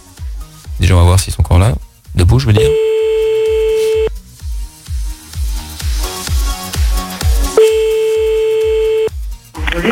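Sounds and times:
rhythmic music bed with a thumping beat: 0.0s - 9.5s
speech: 0.8s - 2.9s
ringback tone of an outgoing phone call: 2.6s - 4.1s, 7.6s - 9.1s.

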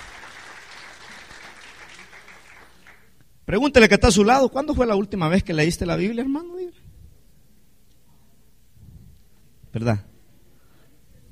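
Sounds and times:
church congregation applauding during a sermon: 0.0s - 3.2s
speech: 3.5s - 6.6s, 9.8s - 10.1s.

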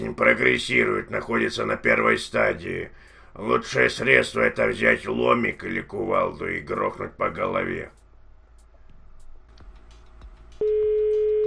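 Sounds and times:
speech: 0.0s - 8.0s
faint noise: 0.0s - 11.4s
telephone line tone during dialing: 10.6s - 11.4s.

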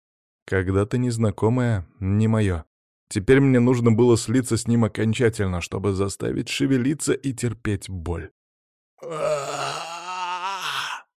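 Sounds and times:
speech: 0.5s - 8.4s, 9.0s - 9.9s
man howling in pain while lifting his body: 9.0s - 11.1s.

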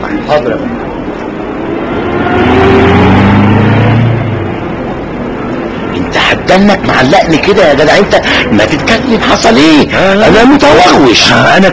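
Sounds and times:
speech: 0.1s - 0.8s, 6.4s - 11.7s
taxi car engine pulling away: 1.3s - 5.7s.

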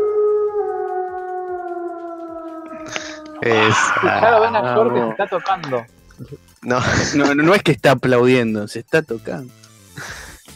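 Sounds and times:
wolf howl sound effect: 0.0s - 5.8s
laughter: 2.8s - 5.9s, 6.7s - 7.6s
speech: 3.4s - 10.2s.

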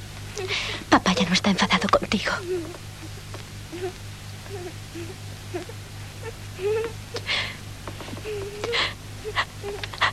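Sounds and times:
steady low hum: 0.0s - 10.1s
speech: 1.4s - 3.1s, 3.8s - 7.6s, 8.3s - 10.1s
child whimpering and sobbing: 2.3s - 7.3s, 8.2s - 10.1s.

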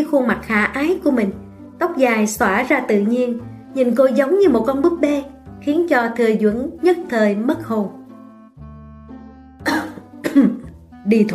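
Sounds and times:
speech: 0.0s - 8.0s, 10.3s - 11.3s
deliberately faked dry cough: 9.6s - 10.6s.

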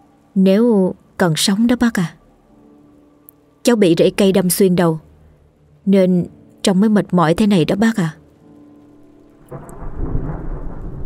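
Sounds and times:
rain-like hiss: 0.0s - 11.0s
speech: 0.4s - 2.2s, 3.6s - 5.1s, 5.8s - 8.2s
thunder crash following a lightning strike: 9.5s - 11.0s.

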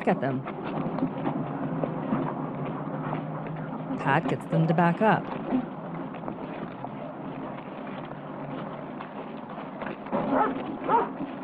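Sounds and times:
speech: 0.0s - 1.4s, 4.0s - 5.8s
steady noisy background: 0.0s - 11.4s
dog barking: 10.3s - 11.1s.

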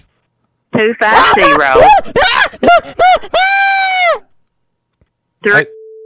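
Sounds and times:
speech: 0.8s - 4.2s, 5.4s - 5.8s
woman screaming over a phone line extension: 1.0s - 2.6s, 3.3s - 4.3s
flat steady tone on a phone line: 5.5s - 6.0s.

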